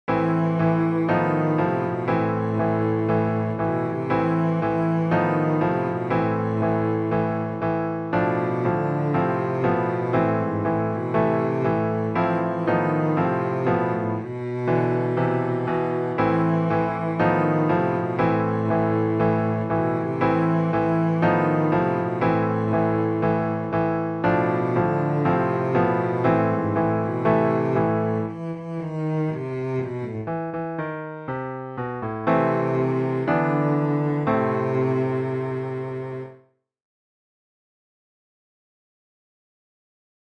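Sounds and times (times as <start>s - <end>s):
cello playing: 0.1s - 36.4s.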